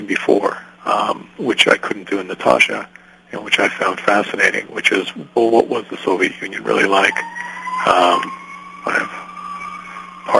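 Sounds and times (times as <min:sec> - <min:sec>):
speech: 0:00.1 - 0:09.2
steady electronic tone: 0:06.1 - 0:10.3
ambulance siren wailing: 0:06.6 - 0:10.3.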